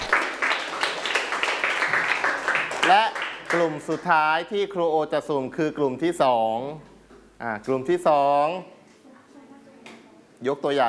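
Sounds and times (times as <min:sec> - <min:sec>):
classmates clapping rhythmically in a class lesson: 0:00.0 - 0:04.2
speech: 0:02.9 - 0:08.8, 0:10.4 - 0:10.8.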